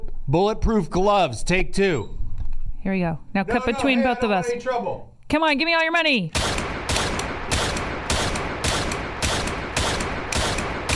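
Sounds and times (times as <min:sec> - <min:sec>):
speech: 0:00.3 - 0:02.2, 0:02.8 - 0:06.6
gunshots: 0:06.3 - 0:10.9.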